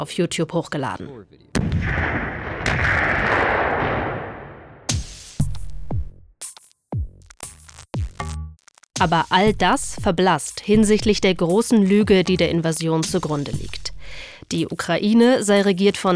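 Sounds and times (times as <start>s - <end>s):
speech: 0.0s - 3.1s, 9.0s - 16.1s
loud explosion with a long rolling roar: 1.5s - 4.9s
rapid sharp booming blasts: 1.5s - 4.9s.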